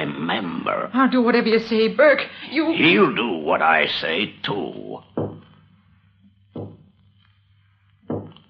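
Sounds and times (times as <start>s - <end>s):
low steady hum: 0.0s - 8.4s
speech: 0.3s - 5.1s
heavy hollow knocks on a door: 5.2s - 5.5s, 6.6s - 6.9s, 8.1s - 8.4s.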